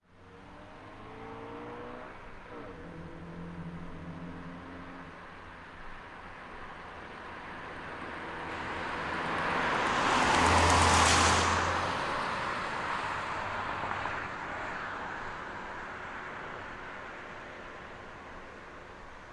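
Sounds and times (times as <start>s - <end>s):
2001 Honda Civic driving on wet road at 50 kph: 0.3s - 19.2s.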